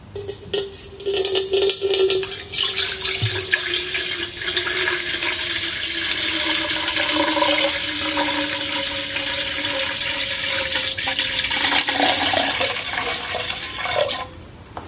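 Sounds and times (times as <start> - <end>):
water pouring from a bottle into a bowl: 0.1 - 14.4.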